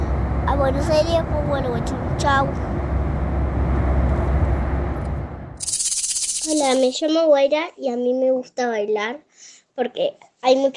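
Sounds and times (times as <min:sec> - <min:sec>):
airplane cabin roar in flight to Buenos Aires: 0:00.0 - 0:05.7
speech: 0:00.6 - 0:02.8, 0:06.5 - 0:10.7.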